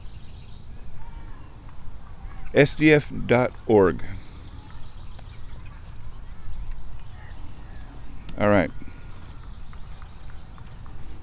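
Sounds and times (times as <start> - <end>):
broadband outdoor noise: 0.0 - 11.2
soft footsteps walking out of a forest: 0.7 - 11.2
speech: 2.5 - 4.2.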